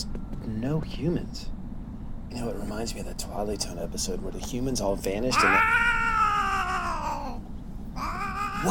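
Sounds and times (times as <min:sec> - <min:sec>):
speech: 0:00.0 - 0:01.6, 0:02.3 - 0:06.0
cat meowing: 0:05.3 - 0:07.4.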